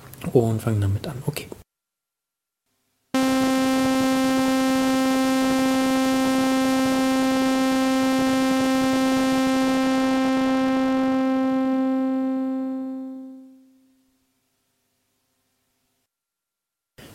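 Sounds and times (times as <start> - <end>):
speech: 0.3 - 1.6
buzzy synthesizer sawtooth tone with low-pass filter sweeping down: 3.2 - 14.0.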